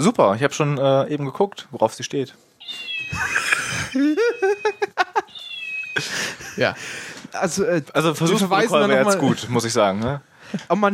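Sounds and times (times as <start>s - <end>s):
speech: 0.0s - 4.8s, 6.0s - 10.9s
short bright mechanical meows from a cat-shaped toy sharpener: 2.6s - 6.0s
laughter: 3.1s - 5.3s, 6.0s - 6.9s.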